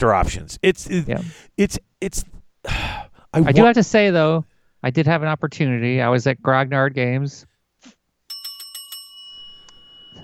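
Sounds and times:
speech: 0:00.0 - 0:08.0
bell ringing: 0:08.3 - 0:10.2.

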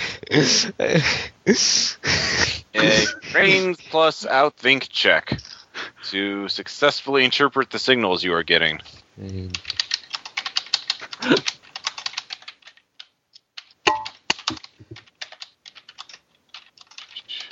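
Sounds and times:
speech: 0:00.3 - 0:09.7, 0:11.2 - 0:11.6
loud computer keyboard typing: 0:09.5 - 0:17.5.

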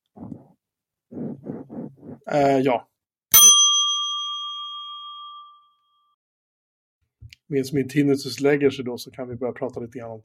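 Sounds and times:
speech: 0:02.3 - 0:02.9, 0:07.5 - 0:10.2
bright bell strike ringing: 0:03.3 - 0:05.8.

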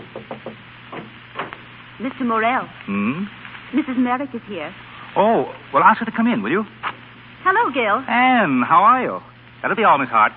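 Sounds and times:
knocking on a door: 0:00.0 - 0:01.5
soft thuds: 0:00.0 - 0:01.7
faint hiss: 0:00.0 - 0:10.3
speech: 0:02.0 - 0:06.8, 0:07.4 - 0:10.3.

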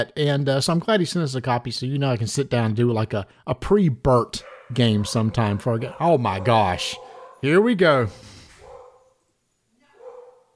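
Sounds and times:
speech: 0:00.0 - 0:08.3
dog barking: 0:04.4 - 0:07.5, 0:08.6 - 0:09.2, 0:09.9 - 0:10.5.

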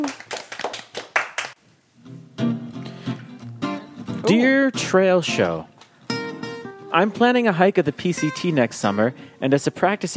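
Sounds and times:
round of applause with steady hand clapping: 0:00.0 - 0:01.6
speech: 0:04.3 - 0:05.7, 0:06.9 - 0:10.1.

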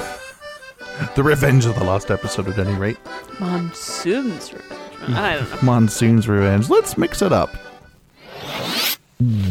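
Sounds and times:
speech: 0:01.1 - 0:07.7, 0:09.2 - 0:09.4
zipper being pulled down: 0:08.1 - 0:09.0.

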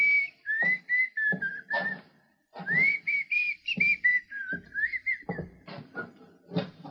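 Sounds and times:
man whistling a slow tune: 0:00.0 - 0:02.0, 0:02.6 - 0:05.6
shuffling noises: 0:00.0 - 0:06.8
soft thuds: 0:00.1 - 0:06.8.

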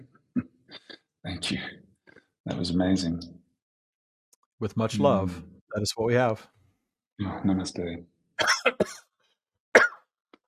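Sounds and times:
speech: 0:01.2 - 0:01.8, 0:02.5 - 0:03.4, 0:04.6 - 0:06.6, 0:07.2 - 0:09.1
person coughing: 0:08.4 - 0:09.0, 0:09.8 - 0:10.0.

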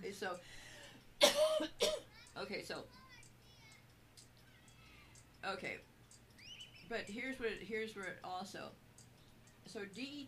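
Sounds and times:
speech: 0:00.2 - 0:00.6, 0:01.2 - 0:03.0, 0:05.4 - 0:05.9, 0:06.9 - 0:08.8, 0:09.6 - 0:10.2
person coughing: 0:01.2 - 0:02.1.

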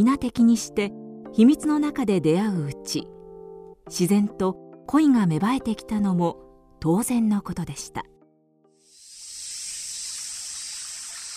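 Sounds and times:
speech: 0:00.0 - 0:03.2, 0:03.9 - 0:08.1
stream of clear water hissing: 0:08.8 - 0:11.3.

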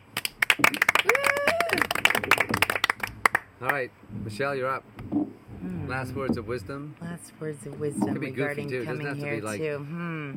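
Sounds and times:
small crowd clapping: 0:00.0 - 0:03.8
speech: 0:00.6 - 0:00.9, 0:03.6 - 0:10.3
person whooping: 0:01.0 - 0:02.0.

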